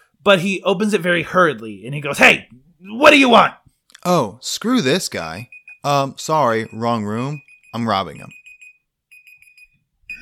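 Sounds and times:
speech: 0:00.2 - 0:08.4
timer alarm beeping: 0:05.4 - 0:10.1.

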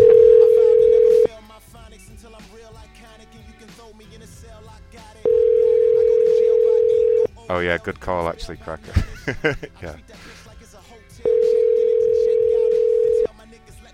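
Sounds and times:
telephone dial tone while a call is being placed: 0:00.0 - 0:01.3, 0:05.3 - 0:07.3, 0:11.3 - 0:13.3
speech: 0:07.6 - 0:10.4
laughter: 0:08.7 - 0:10.5.

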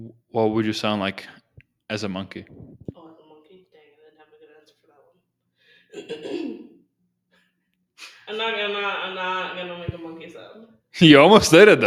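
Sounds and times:
speech: 0:00.0 - 0:02.8, 0:05.9 - 0:06.6, 0:08.3 - 0:11.8
person clearing throat: 0:06.0 - 0:06.8.

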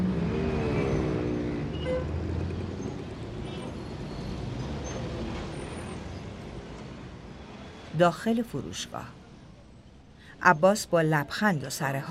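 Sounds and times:
car engine and tyre rumble driving into a shopping arcade parking garage: 0:00.0 - 0:07.9
speech: 0:08.0 - 0:09.2, 0:10.4 - 0:12.0.

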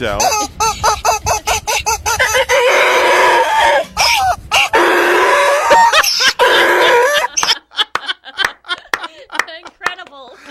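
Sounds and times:
speech: 0:00.0 - 0:00.9
rubber chicken squawking: 0:00.0 - 0:07.6
laughter: 0:05.8 - 0:10.5.

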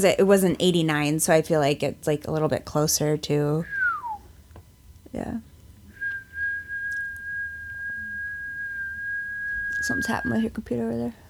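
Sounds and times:
speech: 0:00.0 - 0:03.8, 0:05.1 - 0:05.5, 0:09.9 - 0:11.2
person whistling a single steady high note: 0:03.7 - 0:04.3, 0:06.0 - 0:10.5.

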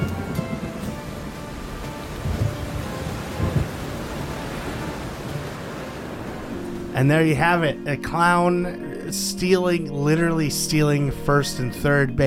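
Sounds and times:
steady rain pouring: 0:00.0 - 0:07.7
low thunder rumbling: 0:00.0 - 0:07.9
speech: 0:07.0 - 0:12.2.

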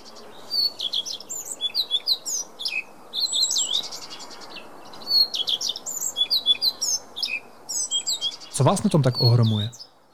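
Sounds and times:
soft hiss: 0:00.0 - 0:10.0
Eurasian blackcap singing: 0:00.0 - 0:10.1
speech: 0:08.6 - 0:09.8.

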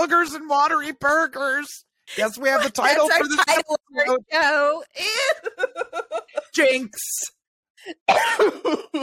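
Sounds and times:
speech: 0:00.0 - 0:09.0
laughter: 0:02.2 - 0:03.6, 0:05.0 - 0:06.7
coughing: 0:07.9 - 0:09.0.

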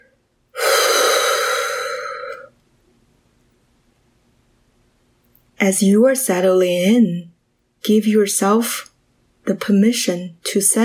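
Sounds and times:
long deep breath in and out: 0:00.6 - 0:02.5
speech: 0:05.6 - 0:08.9, 0:09.5 - 0:10.8.

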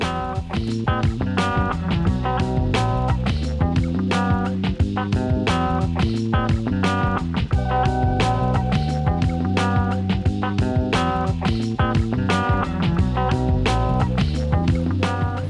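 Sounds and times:
laid-back funk track with drums, bass and melodic instruments: 0:00.0 - 0:15.4.

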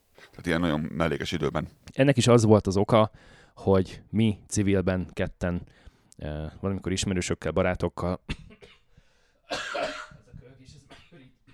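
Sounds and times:
speech: 0:00.4 - 0:08.5
man coughing: 0:09.5 - 0:11.5.

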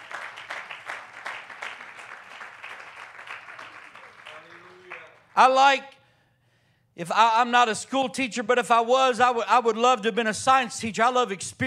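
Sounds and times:
audience clapping: 0:00.0 - 0:05.8
speech: 0:05.4 - 0:05.9, 0:07.0 - 0:11.6.

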